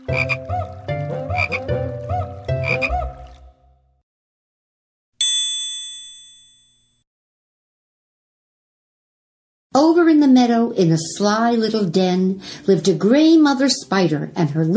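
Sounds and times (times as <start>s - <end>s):
frogs croaking: 0.0s - 1.7s, 2.3s - 3.4s
bright chime: 5.2s - 7.0s
speech: 10.1s - 14.7s.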